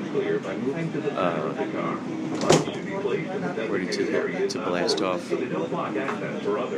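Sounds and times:
murmuring voices: 0.0 - 6.7
steady hum: 0.0 - 6.7
speech: 0.1 - 6.7
train door sliding shut: 2.3 - 2.8.

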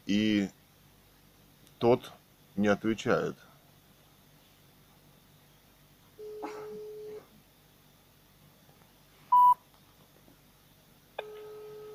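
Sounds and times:
speech: 0.1 - 0.6, 1.9 - 3.5
telephone dialing and ringing tones during a phone call: 11.2 - 11.9.

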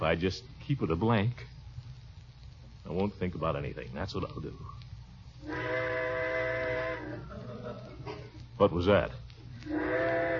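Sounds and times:
speech: 0.0 - 1.6, 2.8 - 4.8, 5.4 - 6.0, 8.6 - 10.3
train whistle blowing: 5.4 - 7.2, 9.6 - 10.3.

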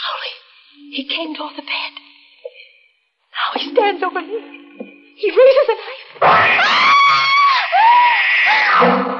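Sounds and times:
speech: 0.2 - 2.1, 3.4 - 4.6, 5.2 - 6.8
woman in bed screaming in terror: 6.4 - 8.8.

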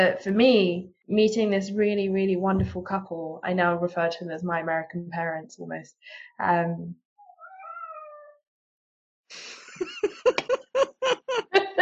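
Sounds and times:
speech: 0.0 - 7.0, 9.3 - 11.4
cat meowing: 7.2 - 8.4
people laughing or giggling: 9.4 - 11.8.

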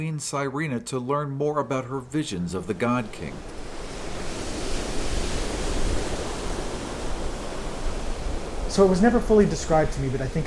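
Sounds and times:
speech: 0.0 - 3.6, 8.7 - 10.4
churning ocean surf: 2.0 - 10.4
steady roaring wind: 2.5 - 10.4.

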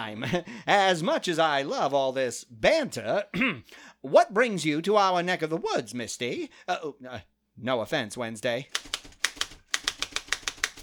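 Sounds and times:
speech: 0.0 - 9.0
rapid typewriter keystrokes clacking: 8.7 - 10.8.

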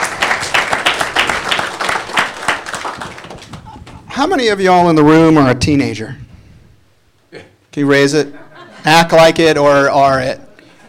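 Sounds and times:
audience applauding warmly: 0.0 - 4.1
speech: 4.2 - 6.2, 7.3 - 10.4.

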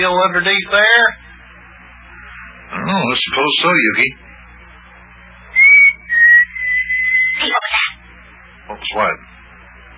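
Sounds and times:
speech: 0.0 - 1.2, 2.7 - 4.2, 8.8 - 9.3
human whistle signal: 5.6 - 7.4.

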